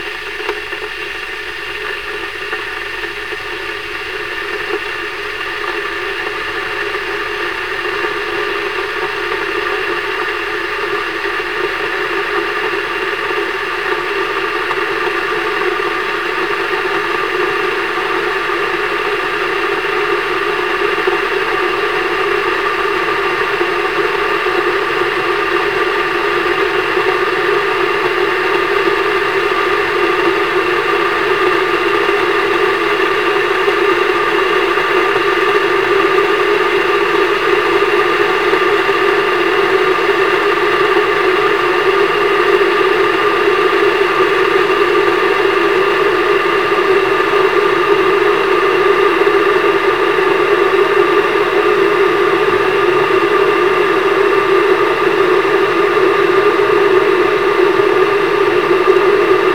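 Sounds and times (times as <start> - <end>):
kettle boiling: 0.0 - 59.5.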